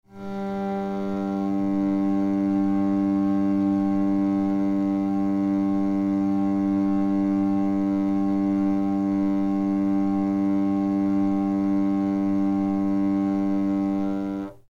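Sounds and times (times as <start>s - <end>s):
zarrabete drone note in G: 0.1s - 14.6s.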